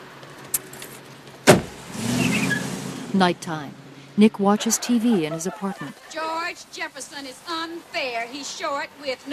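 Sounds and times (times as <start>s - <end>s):
car engine idling: 0.0s - 9.1s
car door slamming shut: 1.4s - 1.9s
speech: 3.1s - 9.3s
laughter: 4.4s - 6.7s.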